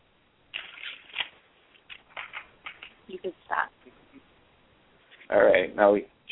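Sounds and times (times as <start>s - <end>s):
deck of cards being shuffled in crisp riffles: 0.5s - 3.1s
speech: 3.1s - 4.3s, 5.3s - 6.3s.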